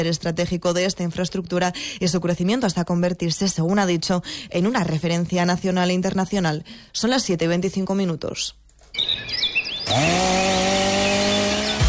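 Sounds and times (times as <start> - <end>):
speech: 0.0 - 10.7
birds chirping: 8.8 - 11.8
chainsaw engine revving and cutting: 9.7 - 11.8.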